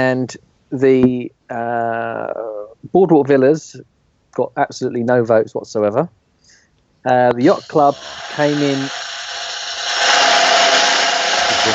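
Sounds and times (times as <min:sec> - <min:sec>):
speech: 0:00.0 - 0:06.2, 0:07.0 - 0:09.1
hissing whir drum roll effect: 0:07.3 - 0:11.7.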